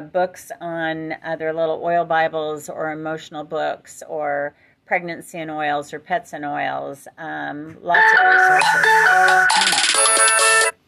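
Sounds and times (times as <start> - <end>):
speech: 0.0 - 10.4
bright electronic phone ringtone melody: 8.0 - 10.8.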